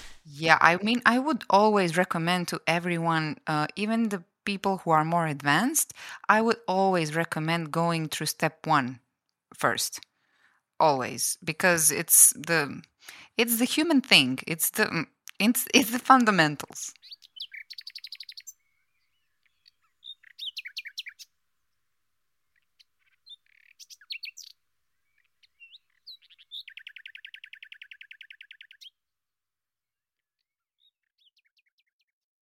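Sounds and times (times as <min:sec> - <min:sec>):
speech: 0:00.2 - 0:10.1, 0:10.8 - 0:17.1
small birds singing in high-pitched chirps and trills: 0:16.9 - 0:21.4, 0:22.4 - 0:29.0, 0:30.2 - 0:32.2.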